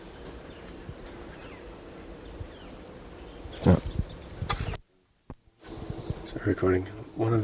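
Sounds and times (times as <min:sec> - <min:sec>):
wild type 2 birds calling: 0:00.0 - 0:04.8
speech: 0:03.6 - 0:03.9, 0:06.5 - 0:07.4.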